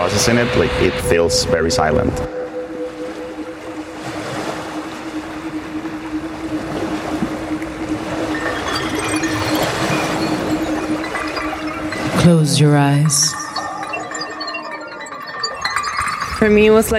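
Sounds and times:
speech: 0.0s - 2.4s, 12.2s - 13.4s, 16.4s - 16.9s
ocean waves: 0.0s - 16.9s.

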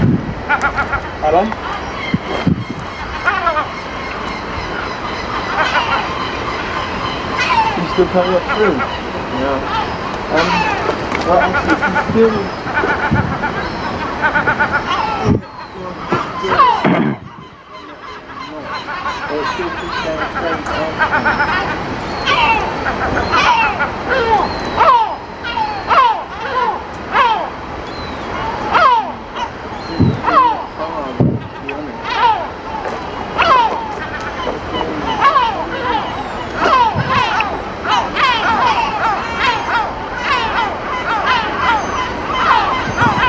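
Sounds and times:
chorus of seagulls calling: 0.0s - 43.2s
faint murmur of voices: 1.1s - 43.2s
speech: 1.2s - 1.8s, 8.0s - 10.6s, 11.3s - 13.0s, 19.3s - 24.6s.

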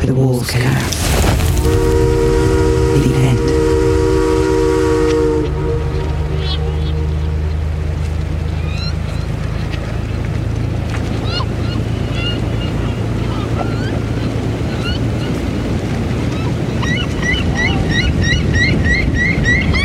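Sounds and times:
speech: 0.0s - 3.8s
river Loire water rushing: 0.6s - 16.8s
low boat engine droning on the Loire: 0.8s - 19.8s
birds chirping: 5.6s - 19.8s.

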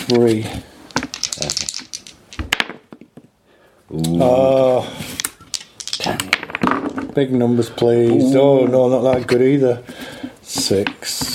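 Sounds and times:
speech: 0.1s - 0.7s, 3.9s - 5.0s, 7.2s - 9.9s, 10.7s - 11.2s
dice rattling and clattering: 0.8s - 3.1s, 4.5s - 7.2s.

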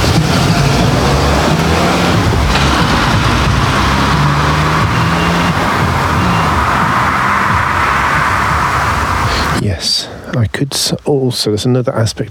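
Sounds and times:
car passing by with engine and tyre roar: 0.0s - 9.6s
speech: 10.4s - 12.3s.

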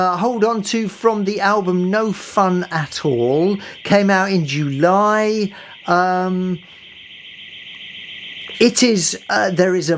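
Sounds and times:
speech: 0.0s - 6.8s, 8.6s - 9.9s
car alarm steady high-pitched whine: 0.0s - 9.9s
car alarm buzzy horn blast outside: 2.6s - 9.8s.

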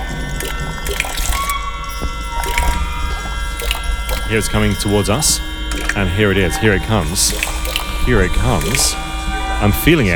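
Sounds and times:
water dripping lightly from a bag: 0.0s - 6.2s, 7.1s - 9.0s
steady low hum: 0.0s - 10.1s
speech: 4.3s - 10.1s.

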